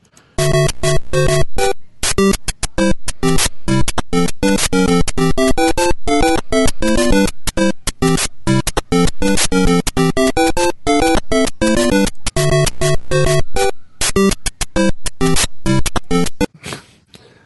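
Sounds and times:
tinny 8-bit video game melody from a plush toy speaker: 0.4s - 16.5s.

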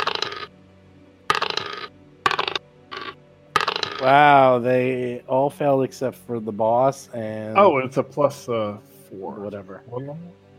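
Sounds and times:
dice rattling across a hard surface: 0.0s - 0.5s, 1.3s - 4.1s
speech: 4.0s - 10.4s.

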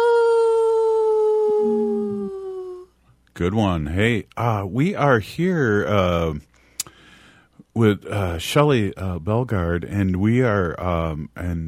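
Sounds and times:
person imitating a wolf howl: 0.0s - 2.9s
faint low hum: 0.6s - 11.6s
speech: 3.4s - 6.5s, 7.8s - 11.6s.

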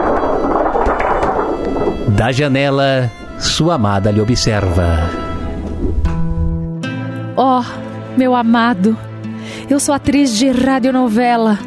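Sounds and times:
storm effect from a shaken thin x-ray sheet: 0.0s - 3.5s, 5.5s - 6.6s
speech: 2.1s - 5.3s, 7.4s - 11.6s.

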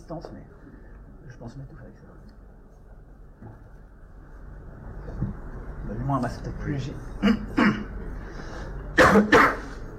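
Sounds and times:
speech: 0.1s - 0.6s, 1.3s - 2.4s, 3.4s - 3.7s, 5.9s - 7.8s, 9.1s - 9.6s
man coughing into his fist: 7.2s - 8.0s, 9.0s - 9.8s.

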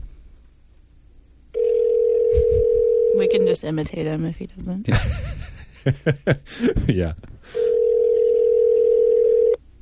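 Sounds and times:
ringback tone of an outgoing telephone call: 1.6s - 3.5s, 7.6s - 9.6s
speech: 3.3s - 7.3s.

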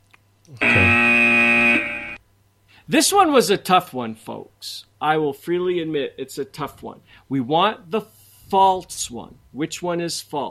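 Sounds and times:
speech: 0.5s - 0.8s, 2.9s - 10.5s
game show buzzer: 0.6s - 2.2s.

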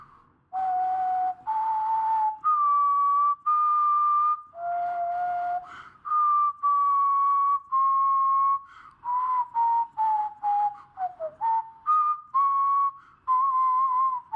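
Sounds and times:
person whistling a slow stepwise melody: 0.0s - 14.3s.

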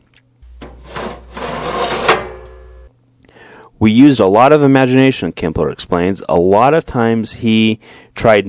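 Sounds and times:
old iron stove door shutting with metallic clunk: 0.6s - 2.6s
old iron stove door scraping on small wood frame: 0.6s - 2.9s
speech: 3.8s - 8.4s.

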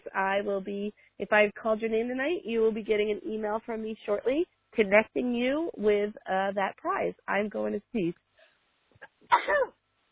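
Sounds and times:
speech: 0.2s - 8.3s, 9.3s - 9.8s
sneeze with catching breaths: 9.3s - 9.8s.

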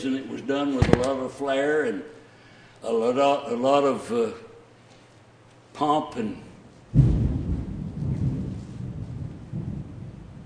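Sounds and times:
speech: 0.0s - 2.2s, 2.8s - 4.5s, 5.8s - 7.0s
thunder rumbling: 6.9s - 10.4s.

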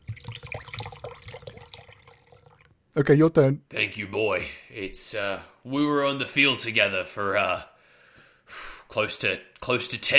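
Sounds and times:
liquid pouring in a splashy stream: 0.0s - 2.8s
speech: 3.0s - 7.7s, 8.5s - 10.1s.

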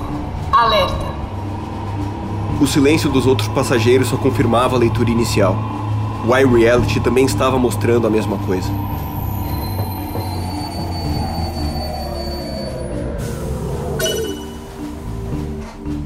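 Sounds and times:
subway train braking into station: 0.0s - 15.8s
speech: 0.6s - 1.1s, 2.6s - 9.1s
subway train metallic wheel squeal: 8.2s - 14.8s.

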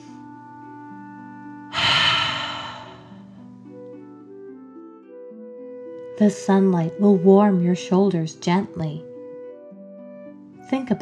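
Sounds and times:
deep breathy exhale during a guided relaxation exercise: 1.7s - 3.6s
speech: 6.2s - 9.1s, 10.7s - 10.9s.

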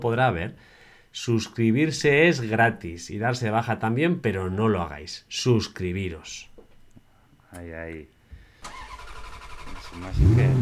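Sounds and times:
speech: 0.0s - 6.5s, 7.5s - 8.8s, 9.9s - 10.5s
car engine cranking with starter and revving: 8.6s - 10.5s.

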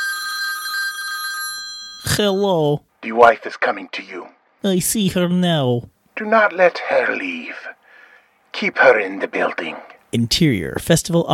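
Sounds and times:
telephone ringing with a bright electronic trill: 0.0s - 2.5s
speech: 2.2s - 7.7s, 8.6s - 11.3s.

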